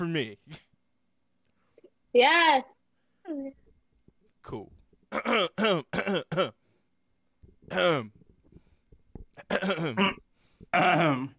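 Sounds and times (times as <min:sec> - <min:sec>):
speech: 0:00.0 - 0:00.6, 0:02.1 - 0:02.7, 0:03.3 - 0:03.6, 0:04.4 - 0:06.6, 0:07.7 - 0:08.2, 0:09.4 - 0:11.3
throat-clearing coughs and rough vocal bursts: 0:05.1 - 0:06.6, 0:07.7 - 0:08.1, 0:09.4 - 0:11.3.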